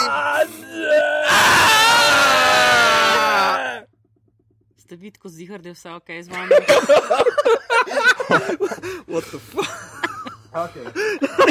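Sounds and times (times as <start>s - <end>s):
person imitating a dying scream with strained cries and a wavering wail: 0.0s - 3.8s
speech: 5.0s - 11.4s
laughter: 6.3s - 11.4s.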